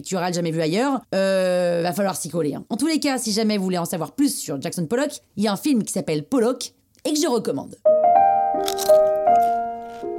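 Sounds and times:
speech: 0.0 - 8.0
crisp crunchy food being bitten: 8.6 - 10.1.

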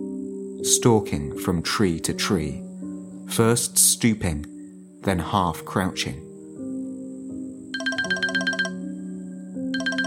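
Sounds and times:
speech: 0.6 - 2.7, 3.3 - 6.3
mobile phone text alert chirping in electronic trills: 7.8 - 8.9, 9.7 - 10.0.

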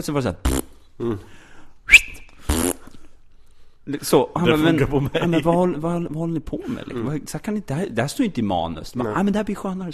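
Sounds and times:
speech: 0.0 - 2.0, 3.9 - 9.9
person imitating a fart with their mouth as a sound effect: 0.4 - 1.2, 2.4 - 2.8.

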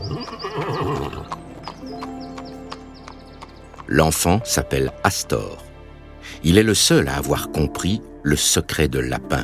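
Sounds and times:
horse whinnying: 0.0 - 1.8
horse hooves clip-clopping: 0.0 - 4.5
speech: 3.9 - 5.7, 6.4 - 9.4.

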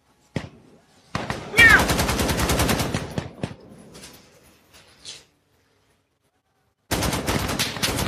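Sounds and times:
automatic gunfire from a video game: 1.2 - 3.6, 6.9 - 8.0.

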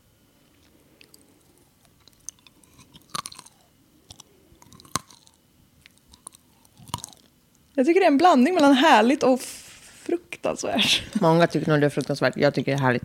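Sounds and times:
person crunchy chewing of nuts: 0.4 - 7.8
speech: 7.8 - 13.0.

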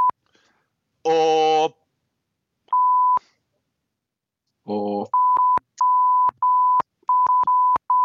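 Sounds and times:
man speaking: 1.1 - 1.8, 4.6 - 5.2
high-pitched censor bleep: 2.7 - 3.2, 5.1 - 8.0.

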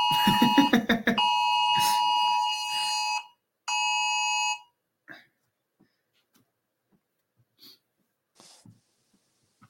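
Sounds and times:
laughter: 0.0 - 1.2
government emergency alert alarm on phone: 0.0 - 4.7.

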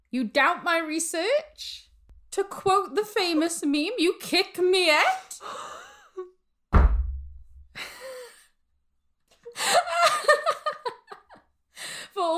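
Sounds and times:
speech: 0.1 - 6.3
head slamming onto a wooden desk: 6.7 - 7.6
laughter: 9.5 - 11.4.

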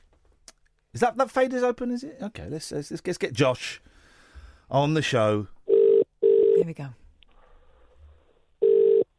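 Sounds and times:
speech: 1.0 - 3.9, 4.7 - 5.6, 6.6 - 7.0
phone line ringback tone: 5.7 - 6.6, 8.6 - 9.1.

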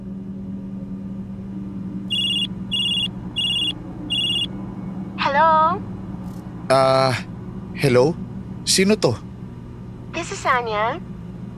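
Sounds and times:
low steady hum: 0.0 - 11.5
mobile phone ringing with a bright high electronic ringtone: 2.1 - 4.5
speech: 6.7 - 9.3, 10.2 - 11.1.

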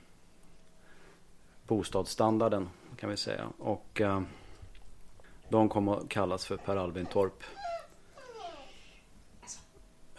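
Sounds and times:
speech: 1.7 - 4.4, 5.5 - 7.7
dog whining: 6.4 - 9.1.

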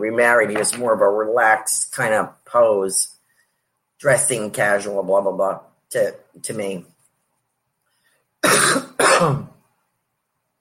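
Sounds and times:
speech: 0.0 - 3.2, 4.0 - 6.9, 8.4 - 9.5
raspy coughs: 8.4 - 9.6.

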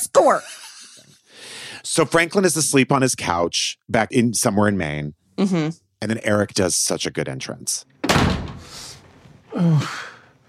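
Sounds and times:
speech: 0.1 - 0.6, 1.8 - 8.4, 9.6 - 10.1
door slamming shut: 8.0 - 9.5.

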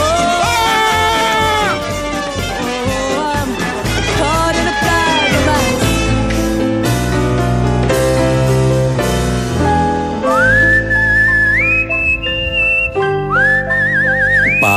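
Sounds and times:
instrumental backing music: 0.0 - 14.7
whistled tune: 10.2 - 14.7.

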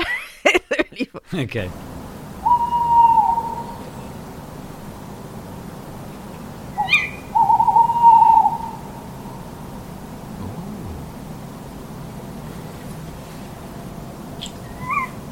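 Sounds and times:
speech: 1.2 - 1.9
tawny owls hooting to each other across a lake: 2.4 - 4.0, 6.8 - 9.4, 10.4 - 11.3.

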